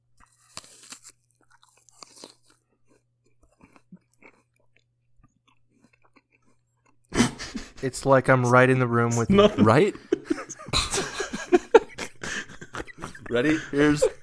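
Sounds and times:
vocal imitation of someone crunching and eating an apple: 0.2 - 7.4
laughter: 7.2 - 7.9, 9.0 - 14.2
speech: 7.8 - 10.4, 13.3 - 14.2.

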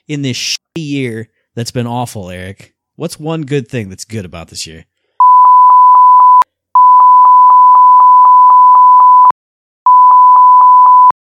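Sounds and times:
speech: 0.1 - 4.9
censor beep: 5.2 - 9.3, 9.9 - 11.2.

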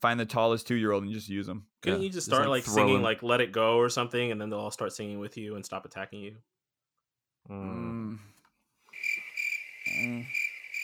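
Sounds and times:
speech: 0.0 - 6.6, 7.4 - 8.3, 9.9 - 10.4
short low voice-like tones: 7.5 - 8.3, 9.9 - 10.3
crickets chirping: 8.9 - 10.8.

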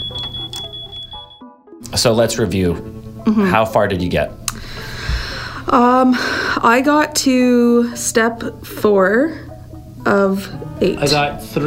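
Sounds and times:
10-minute timer alarm high-pitched electronic tone: 0.0 - 1.6
speech: 1.9 - 4.4, 5.7 - 9.4, 10.1 - 11.6.

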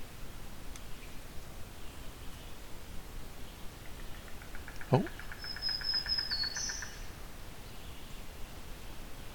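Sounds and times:
steady hiss of noise: 0.0 - 9.3
great crested flycatcher whistled call: 5.4 - 7.0.

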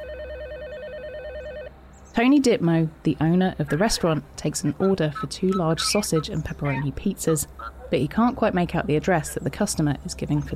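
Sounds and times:
telephone ringing with electronic trill: 0.0 - 1.8
low hum: 0.0 - 10.5
speech: 2.2 - 10.5.

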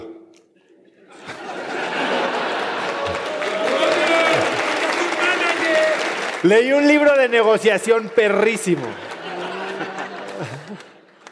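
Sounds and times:
laughter: 0.9 - 5.9, 8.3 - 11.3
people cheering: 1.4 - 11.0
audience applause: 1.5 - 11.3
speech: 6.4 - 9.0.

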